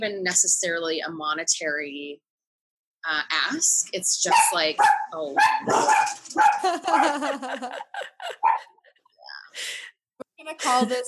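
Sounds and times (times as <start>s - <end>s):
speech: 0.0s - 2.3s, 3.0s - 8.7s, 10.4s - 11.0s
dog barking and yelping at a mail carrier: 4.3s - 7.4s, 8.3s - 8.9s
laughter: 6.6s - 8.9s.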